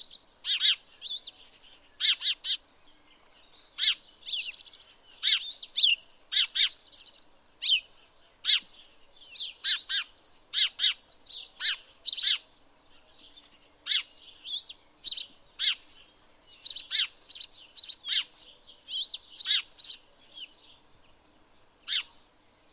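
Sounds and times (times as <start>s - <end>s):
house sparrow (Passer domesticus) chirping: 0.0s - 22.7s.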